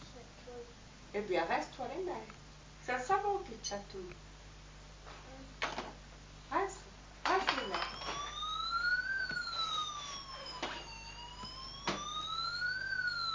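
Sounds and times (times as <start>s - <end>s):
speech: 1.2s - 4.3s
ambulance siren wailing: 7.5s - 13.3s.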